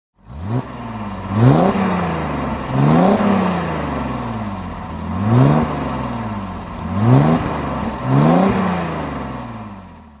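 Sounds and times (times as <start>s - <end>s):
220SE car engine throttle revving: 0.2s - 10.1s.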